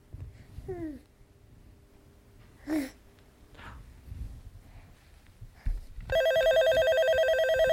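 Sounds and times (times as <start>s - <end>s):
toy telephone ringing with a shrill buzzy electronic trill: 6.1s - 7.7s.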